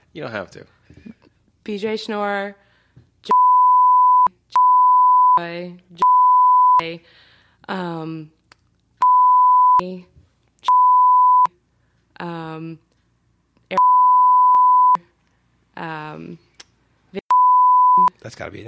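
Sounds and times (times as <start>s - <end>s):
speech: 0.2s - 2.6s, 5.4s - 6.0s, 6.8s - 8.4s, 9.8s - 10.1s, 12.2s - 12.8s, 15.8s - 16.4s, 18.2s - 18.6s
censor bleep tones: 3.3s - 5.4s, 6.0s - 6.8s, 9.0s - 9.8s, 10.7s - 11.5s, 13.7s - 15.0s, 17.3s - 18.2s.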